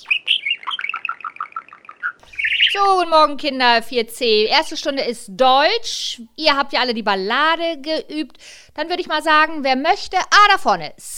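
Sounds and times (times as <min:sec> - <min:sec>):
small bird chirping on a primary school's fire escape: 0:00.0 - 0:03.0
speech: 0:02.8 - 0:11.1.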